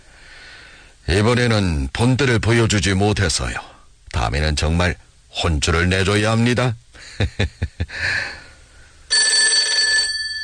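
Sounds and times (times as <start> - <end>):
speech: 1.1 - 8.4
telephone bell ringing: 9.1 - 10.4.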